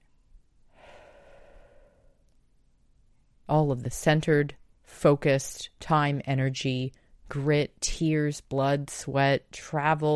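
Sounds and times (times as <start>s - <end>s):
deep breath in and out: 0.7s - 2.3s
speech: 3.5s - 10.1s.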